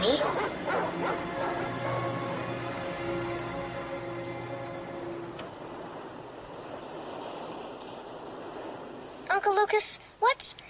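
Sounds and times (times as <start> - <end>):
angry guard dogs barking in an enclosure: 0.0 - 2.1
low tonal drone: 0.0 - 7.0
speech: 9.5 - 10.6.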